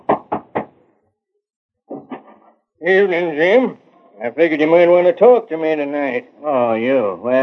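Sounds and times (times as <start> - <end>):
knocking on a wooden door: 0.0 - 0.7
speech: 2.8 - 7.4.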